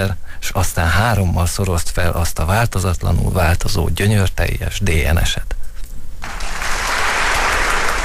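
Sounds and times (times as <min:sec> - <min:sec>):
speech: 0:00.0 - 0:05.6
audience applause after a poem reading: 0:06.2 - 0:08.0.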